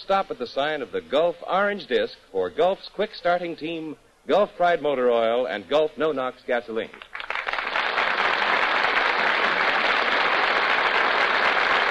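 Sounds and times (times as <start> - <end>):
speech: 0.0 - 7.1
large studio audience applauding: 7.0 - 11.8.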